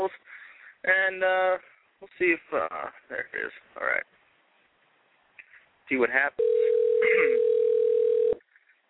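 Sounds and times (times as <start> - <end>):
speech: 0.8 - 4.1, 5.9 - 7.4
telephone dial tone before placing a call: 6.4 - 8.4.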